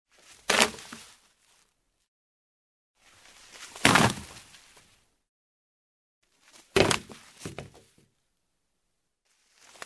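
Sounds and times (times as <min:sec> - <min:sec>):
rope falling: 0:00.2 - 0:01.6, 0:03.5 - 0:04.8, 0:06.4 - 0:07.9, 0:09.6 - 0:09.8.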